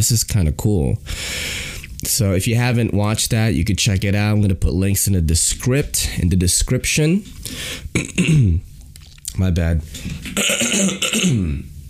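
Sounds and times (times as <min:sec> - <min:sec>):
speech: 0:00.0 - 0:08.7, 0:09.4 - 0:11.7
person coughing into a microphone: 0:07.9 - 0:08.6, 0:10.1 - 0:11.7.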